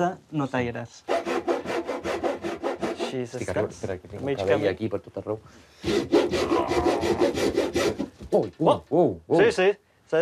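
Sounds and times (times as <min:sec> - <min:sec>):
speech: 0:00.0 - 0:01.2, 0:03.1 - 0:10.2
hand saw cutting through wood: 0:01.1 - 0:03.2, 0:05.8 - 0:08.2.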